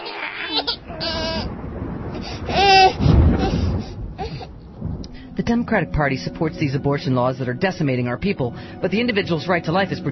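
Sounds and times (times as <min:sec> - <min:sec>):
infant wailing in high quavering cries: 0:00.0 - 0:01.5, 0:02.2 - 0:03.6, 0:04.2 - 0:04.5
steady hiss of rain: 0:00.5 - 0:09.1
low rumble of thunder: 0:00.5 - 0:10.1
speech: 0:05.4 - 0:10.1.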